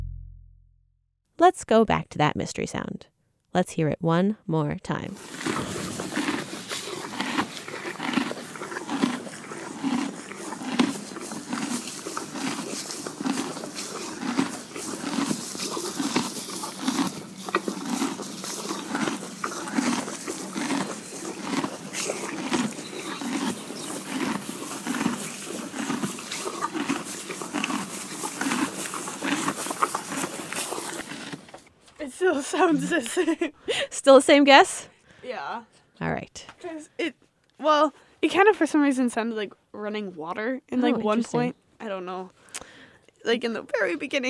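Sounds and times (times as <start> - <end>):
speech: 1.6 - 5.8, 32.8 - 42.7, 43.2 - 44.2
horse chewing hay: 5.2 - 31.7.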